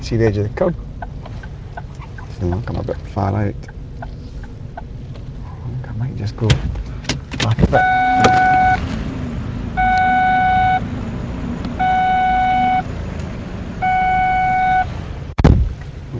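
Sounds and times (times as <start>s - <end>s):
speech: 0.0s - 0.9s, 2.4s - 3.7s, 6.0s - 6.8s, 7.4s - 9.0s
low car engine rumble: 0.0s - 16.1s
electronic car door-open warning chimes: 7.8s - 8.8s, 9.8s - 10.8s, 11.8s - 12.8s, 13.8s - 14.9s
sharp thud: 15.4s - 15.8s.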